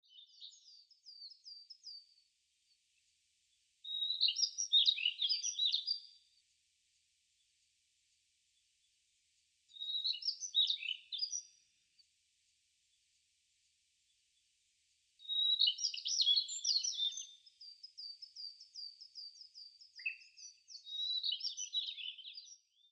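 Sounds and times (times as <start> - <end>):
Daurian Redstart calling in Shiga: 3.8 - 6.2, 9.7 - 11.6, 15.2 - 22.8.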